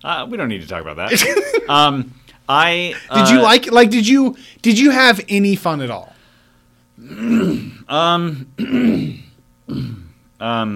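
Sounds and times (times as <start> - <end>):
speech: 0.0 - 6.1, 7.0 - 10.7
laughter: 1.1 - 1.7, 2.9 - 3.5
person clearing throat with rough groaning voiced rasps: 7.0 - 10.2.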